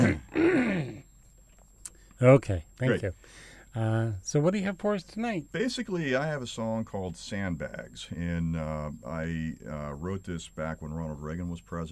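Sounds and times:
person clearing throat into the mic: 0.0 - 1.0
speech: 2.2 - 11.8.

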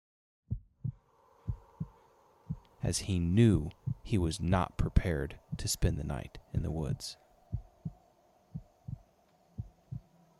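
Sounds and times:
pounding heartbeat sound effect: 0.5 - 2.7, 3.7 - 4.1, 7.5 - 10.1
faint low hum: 0.5 - 10.3
speech: 2.8 - 7.2.

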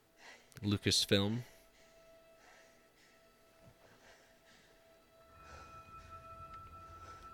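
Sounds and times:
speech: 0.6 - 1.5
slow heavy breathing: 1.5 - 7.3.

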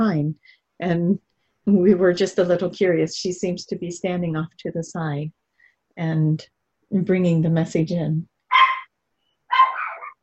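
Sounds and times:
speech: 0.1 - 5.4, 6.0 - 8.3
small dog barking sharply: 8.5 - 8.9, 9.5 - 10.2.

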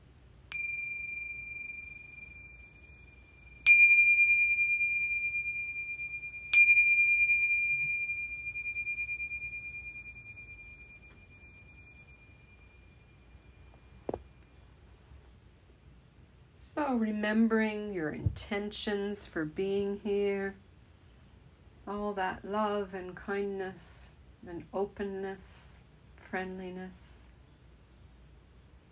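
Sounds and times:
meditation bell strikes: 0.5 - 14.1
speech: 16.8 - 20.6, 21.9 - 25.7, 26.3 - 27.1.

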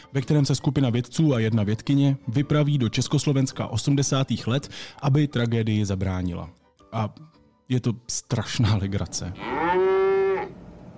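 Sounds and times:
speech: 0.1 - 9.8
mountain-breed sheep bleating: 9.4 - 10.5.

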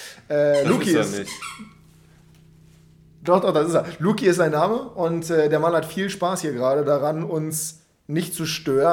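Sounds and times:
speech: 0.2 - 1.8, 3.2 - 8.9
low steady background hum: 0.3 - 8.9
dog squeaking: 0.6 - 1.8.

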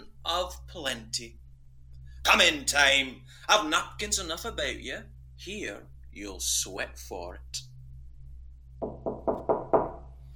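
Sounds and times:
low hum: 0.0 - 10.3
speech: 0.2 - 1.4, 2.2 - 7.7
firm knocks on a wooden door: 8.8 - 10.1.

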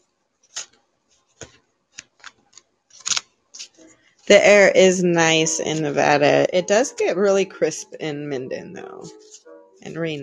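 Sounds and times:
deck of cards being shuffled: 0.4 - 3.9
speech: 4.3 - 9.2, 9.8 - 10.2.

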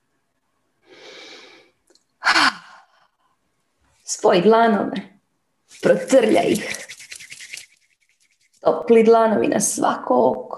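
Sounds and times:
breathing in through the nose and out through the mouth during a guided relaxation exercise: 0.8 - 3.4
speech: 4.1 - 5.1, 5.8 - 6.8, 8.7 - 10.5.

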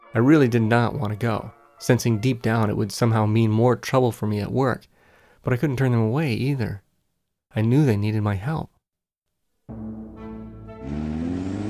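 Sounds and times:
speech: 0.1 - 6.8, 7.5 - 8.7
patrol car engine roaring and accelerating into rush hour traffic: 10.6 - 11.6.

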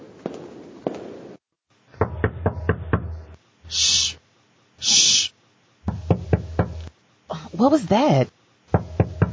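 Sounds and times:
knocking on a door: 2.0 - 3.2, 5.8 - 6.9, 8.7 - 9.3
short burst of hissing noise: 3.6 - 4.2, 4.8 - 5.4
speech: 7.6 - 8.4.

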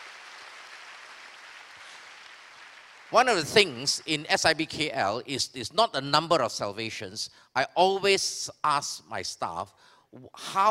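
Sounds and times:
large church audience clapping as a clap offering: 0.0 - 4.2
speech: 3.1 - 10.6.

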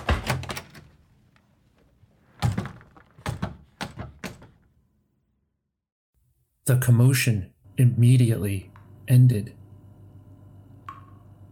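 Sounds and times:
cluster of sharp knocks and bumps: 0.0 - 1.1, 1.7 - 4.8
dining room door flung open with a heavy wooden thunk: 0.0 - 1.3, 2.3 - 4.8
speech: 6.7 - 9.6.

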